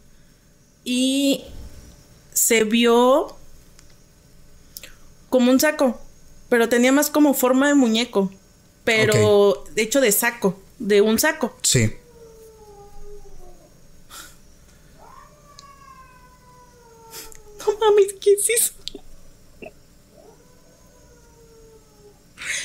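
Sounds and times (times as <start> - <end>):
speech: 0.8 - 1.5, 2.5 - 3.4, 5.3 - 12.0, 17.8 - 18.8
startled people talking and exclaiming: 9.0 - 9.4
cat yowling: 12.0 - 13.7, 15.0 - 17.8, 20.1 - 22.2.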